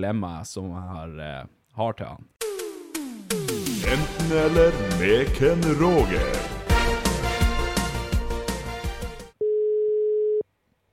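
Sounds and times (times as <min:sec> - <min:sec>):
speech: 0:00.0 - 0:02.4, 0:03.2 - 0:06.6
busy music with a thumping beat: 0:02.4 - 0:09.3
steady electronic telephone ringback tone: 0:09.4 - 0:10.4.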